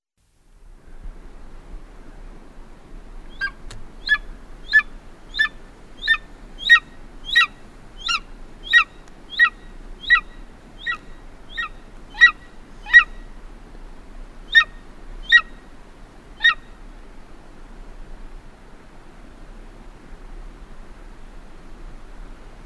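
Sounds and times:
low steady background noise: 0.2 - 22.6
golden eagle calling in short high yelps: 3.3 - 13.2, 14.5 - 15.5, 16.4 - 16.6.

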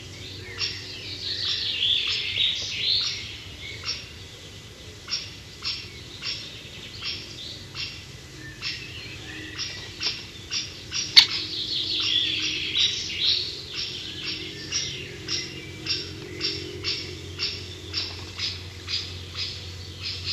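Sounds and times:
other birds' warbling song: 0.0 - 20.3
great spotted woodpecker giving sharp short kik notes: 9.5 - 20.3.

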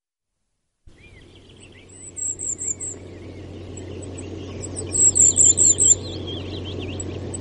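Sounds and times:
goldcrest song: 0.9 - 7.3
lower twittering notes: 0.9 - 7.3
steady low hum: 0.9 - 7.3.

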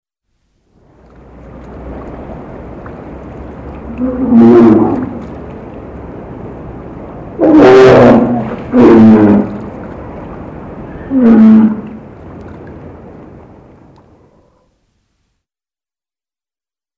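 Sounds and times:
low background rumble: 0.3 - 15.3
polar bear growling: 3.9 - 5.2, 7.4 - 9.6.

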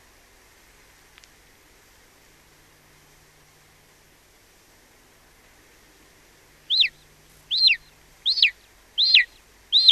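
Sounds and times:
golden eagle yelping: 6.7 - 9.9.

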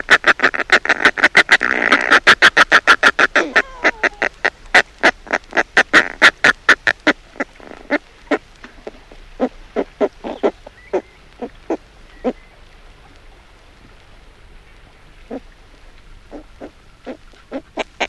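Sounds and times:
Northern fulmar cackling: 0.0 - 12.4, 16.3 - 18.0.

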